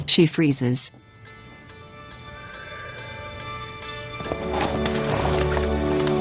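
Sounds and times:
speech: 0.1s - 1.0s
horse hooves clopping: 4.2s - 6.1s.

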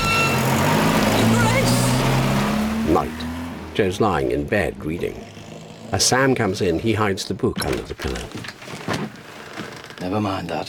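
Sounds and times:
car engine humming as the car drives through gates: 0.0s - 8.2s
speech: 3.8s - 5.3s, 5.9s - 9.2s, 10.0s - 10.6s.

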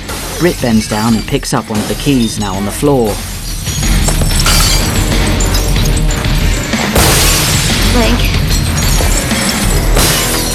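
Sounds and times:
speech: 0.4s - 3.3s, 7.9s - 8.4s
glass jars overhead bashed and smashed, shards showering the floor: 0.6s - 10.5s.

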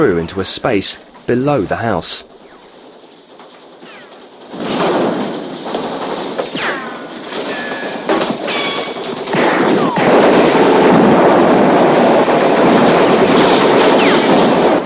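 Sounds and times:
speech: 0.0s - 2.4s
posse gunfire with buckshot and bullets peppering a house: 4.5s - 14.8s.

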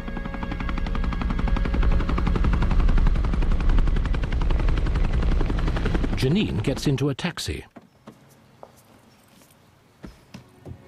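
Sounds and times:
rescue helicopter rotor chop arriving over snow: 0.0s - 7.1s
speech: 6.2s - 7.7s.

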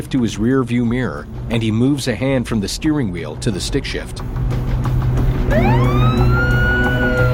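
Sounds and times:
speech: 0.1s - 4.7s, 5.5s - 6.3s
car engine and road noise: 4.2s - 7.3s
police car siren wailing: 5.4s - 7.3s.

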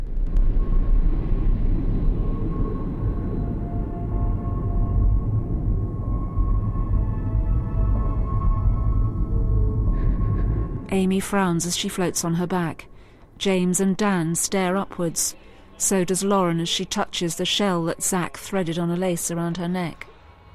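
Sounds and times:
aeroplane passing high overhead: 0.0s - 11.4s
speech: 11.0s - 20.1s.

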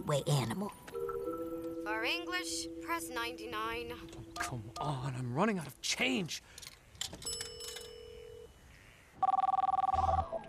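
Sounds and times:
speech: 0.0s - 0.9s, 1.8s - 7.4s
telephone ringing with trilling bell tones: 7.3s - 8.5s, 9.2s - 10.4s
short electronic beeps: 9.2s - 10.4s.

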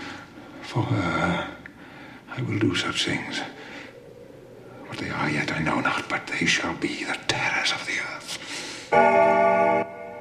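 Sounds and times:
speech: 0.7s - 1.6s, 2.4s - 3.6s, 5.0s - 9.4s
single bell ringing: 8.9s - 10.2s.

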